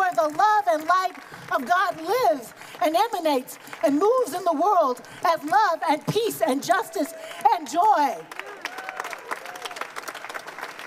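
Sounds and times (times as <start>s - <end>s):
crowd clapping and applauding: 0.0s - 10.8s
speech: 0.2s - 8.5s
people whooping: 8.4s - 9.9s.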